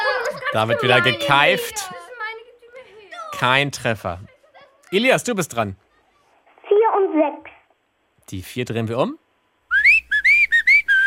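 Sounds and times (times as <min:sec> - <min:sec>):
laughter: 0:00.0 - 0:03.2, 0:04.1 - 0:05.1
speech: 0:00.5 - 0:02.0, 0:03.4 - 0:04.3, 0:04.9 - 0:05.8, 0:06.9 - 0:07.6, 0:08.3 - 0:09.2
cheerful whistled tune: 0:09.7 - 0:11.0.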